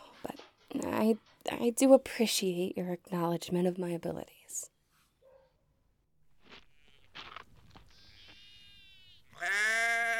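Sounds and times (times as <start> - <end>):
speech: 0.8 - 4.7
crunching footsteps on the ground: 6.3 - 8.6
sheep bleating: 8.0 - 10.1.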